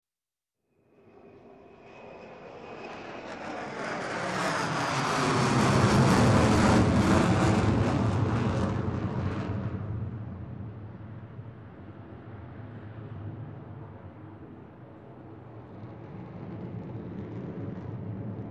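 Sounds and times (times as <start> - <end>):
fast aircraft passing by: 1.0 - 10.6.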